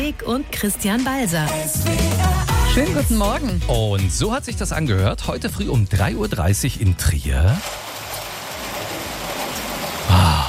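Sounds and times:
speech: 0.1s - 7.8s
heavy rain pouring at night: 7.2s - 10.4s.

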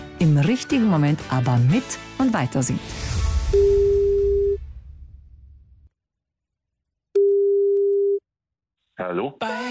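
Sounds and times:
music: 0.0s - 4.6s
speech: 0.2s - 3.8s
telephone ringback tone: 3.6s - 4.6s, 7.2s - 8.2s.

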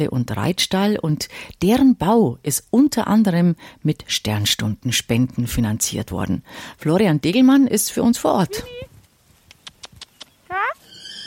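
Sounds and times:
speech: 0.0s - 8.9s
soft quiet clicks: 9.5s - 10.4s
horse neighing at the paddock of an animal-assisted therapy center: 10.5s - 11.2s.

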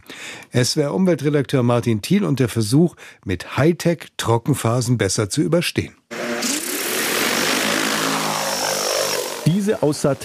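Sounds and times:
speech: 0.5s - 6.5s, 9.7s - 10.2s
agricultural seeding multirotor drone propeller whine over a field: 6.1s - 10.2s.

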